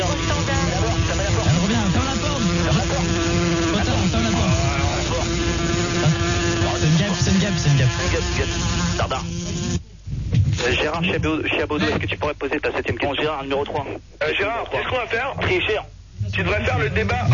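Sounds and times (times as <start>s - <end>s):
housefly buzzing with a droning whine: 0.0s - 9.8s
speech: 11.0s - 17.3s.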